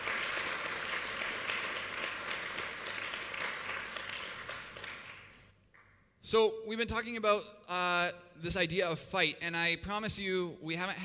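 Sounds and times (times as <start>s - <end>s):
audience clapping: 0.0s - 6.0s
speech: 6.3s - 11.0s.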